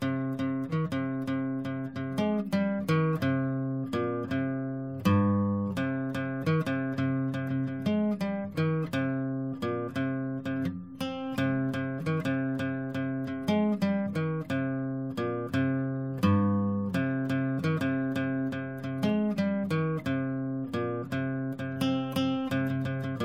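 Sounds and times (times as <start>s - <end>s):
acoustic jam in C minor: 0.0s - 23.2s.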